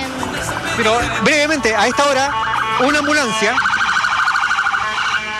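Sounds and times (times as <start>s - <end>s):
ambulance siren wailing and yelping on a bridge: 0.1s - 5.3s
speech: 0.8s - 3.7s.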